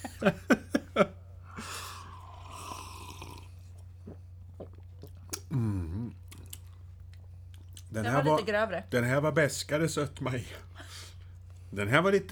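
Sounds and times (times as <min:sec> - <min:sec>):
laughter: 0:00.0 - 0:01.2, 0:08.0 - 0:08.6
speech: 0:00.2 - 0:00.6, 0:08.2 - 0:10.7, 0:11.7 - 0:12.3
soft airy slurp of a drink: 0:01.5 - 0:06.9
small mouth clicks during a tasting: 0:02.0 - 0:07.9.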